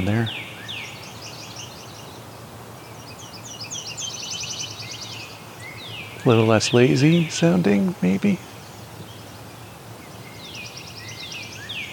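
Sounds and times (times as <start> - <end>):
speech: 0.0 - 0.5, 6.2 - 8.5
Nashville warbler singing high rapid trilled phrases: 0.0 - 11.9
low outdoor rumble: 6.2 - 10.2.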